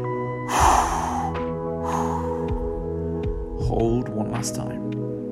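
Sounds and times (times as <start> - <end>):
low musical drone: 0.0 - 3.6
forceful exhales during a breathing exercise: 0.5 - 2.6
speech: 3.7 - 5.2.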